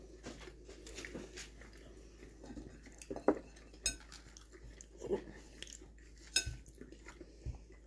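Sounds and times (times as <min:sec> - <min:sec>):
person biting and chewing a thinly cut steak: 0:00.0 - 0:07.8
cutlery clinking against a plate: 0:02.6 - 0:04.3, 0:06.2 - 0:06.8.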